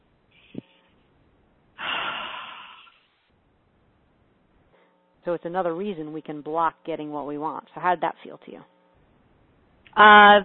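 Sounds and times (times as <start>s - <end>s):
deep breath: 1.8s - 3.1s
sharp sniff: 1.8s - 3.2s
speech: 5.2s - 8.7s, 10.0s - 10.4s.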